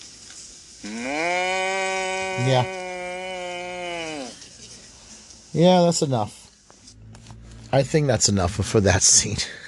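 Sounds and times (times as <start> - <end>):
speech: 0.8 - 1.3, 2.4 - 2.8, 5.5 - 6.4, 7.7 - 9.6
cow mooing: 0.8 - 4.4.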